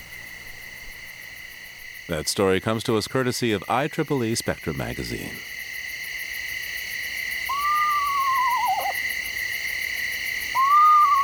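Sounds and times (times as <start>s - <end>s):
insects or frogs trilling: 0.0s - 11.2s
speech: 2.1s - 5.6s
eastern screech owl descending quavering whinny call: 7.3s - 9.4s, 10.3s - 11.2s.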